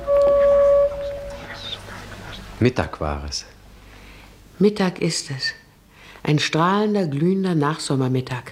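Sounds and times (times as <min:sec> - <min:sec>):
vehicle horn honk: 0:00.0 - 0:01.7
speech: 0:02.6 - 0:03.6, 0:04.6 - 0:05.6, 0:06.2 - 0:08.5.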